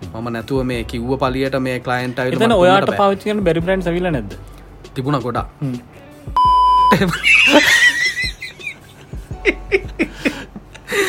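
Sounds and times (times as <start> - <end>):
speech: 0.2 - 7.9
censorship bleep: 6.4 - 7.0
laughter: 6.9 - 11.0.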